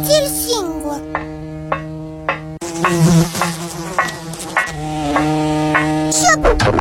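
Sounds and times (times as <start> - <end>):
fly buzzing: 0.0 - 6.7.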